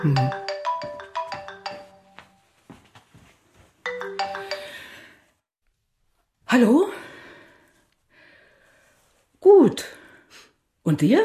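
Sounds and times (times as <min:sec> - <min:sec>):
speech: 0:00.0 - 0:00.4, 0:06.5 - 0:06.9, 0:10.9 - 0:11.2
phone ringtone with bright electronic tones: 0:00.0 - 0:02.4, 0:03.8 - 0:05.1.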